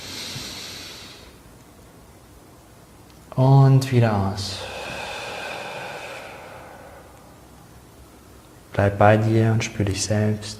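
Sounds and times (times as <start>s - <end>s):
long airy deep inhalation through the nose in a guided relaxation breathing exercise: 0.0s - 1.4s, 4.5s - 8.4s
speech: 3.4s - 4.7s, 8.8s - 10.5s.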